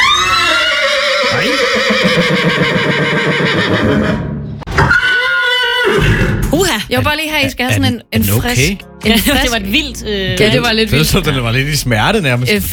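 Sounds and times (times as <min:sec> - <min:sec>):
horse whinnying: 0:00.0 - 0:06.4
speech: 0:06.9 - 0:12.7.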